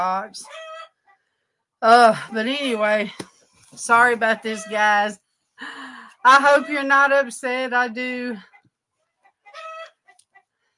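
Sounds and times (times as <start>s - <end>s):
speech: 0.0s - 0.6s, 1.8s - 8.5s
chicken clucking and squawking: 0.4s - 1.2s, 6.2s - 7.0s, 9.2s - 10.5s.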